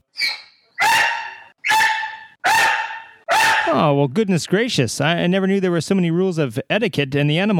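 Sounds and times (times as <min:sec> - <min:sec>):
dog barking: 0:00.8 - 0:03.8
speech: 0:03.7 - 0:07.5.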